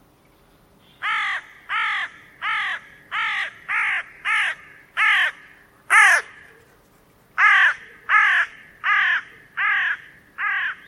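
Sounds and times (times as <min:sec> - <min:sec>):
bird giving harsh hoarse caws: 0:01.0 - 0:06.5, 0:07.4 - 0:10.8.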